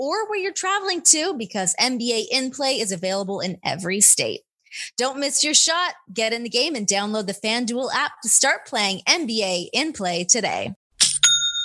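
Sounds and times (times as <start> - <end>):
speech: 0.0 - 10.8
online store sale notification chime: 11.2 - 11.6.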